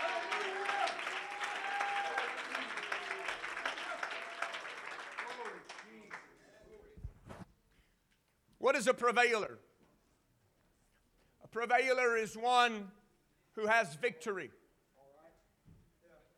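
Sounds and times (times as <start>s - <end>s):
church congregation clapping hands: 0.0s - 6.9s
speech: 8.7s - 9.7s, 11.6s - 13.0s, 13.6s - 14.6s.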